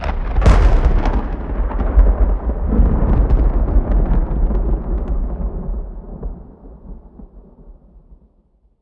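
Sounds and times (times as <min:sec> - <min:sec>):
rain: 0:00.0 - 0:08.5
thunder: 0:00.0 - 0:08.6.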